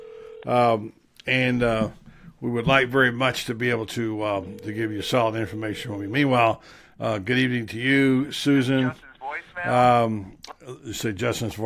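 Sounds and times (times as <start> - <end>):
steady electronic phone tone: 0.0 - 0.5, 4.4 - 6.3
speech: 0.4 - 11.6.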